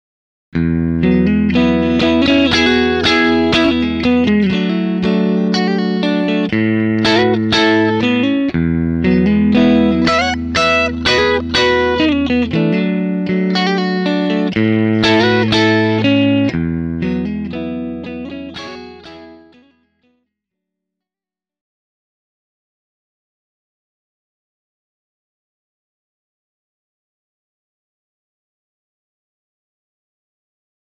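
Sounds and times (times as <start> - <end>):
guitar through AC30 amplifier: 0.6 - 19.7.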